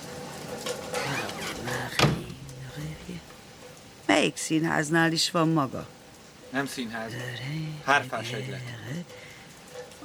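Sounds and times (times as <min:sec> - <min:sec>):
door pushed shut with a sharp thud: 0:01.4 - 0:02.4
speech: 0:04.2 - 0:09.3.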